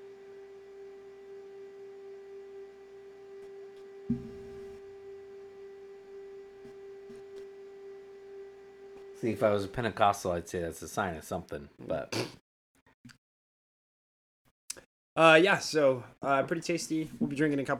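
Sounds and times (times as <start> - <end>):
speech: 4.1 - 4.4, 9.2 - 12.4, 15.2 - 17.7
printer mechanical thump: 4.1 - 4.8.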